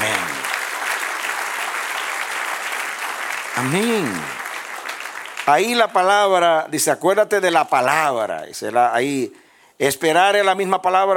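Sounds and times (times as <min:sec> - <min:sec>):
church congregation applauding: 0:00.0 - 0:08.0
speech: 0:03.6 - 0:04.4, 0:05.5 - 0:11.1.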